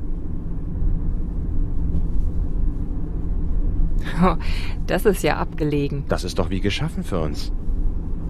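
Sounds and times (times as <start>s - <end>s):
car rolling over a bumpy path through a pine wood: 0.0s - 8.2s
speech: 4.1s - 7.6s.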